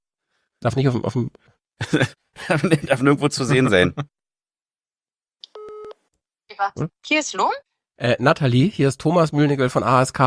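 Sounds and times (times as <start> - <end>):
speech: 0.6 - 4.2, 6.6 - 10.2
mobile phone call tone beep: 5.6 - 6.0.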